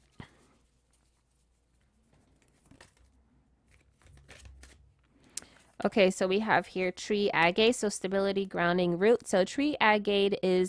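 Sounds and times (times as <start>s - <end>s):
crystal and gemstone cards being shuffled: 0.0s - 5.8s
speech: 5.8s - 10.6s.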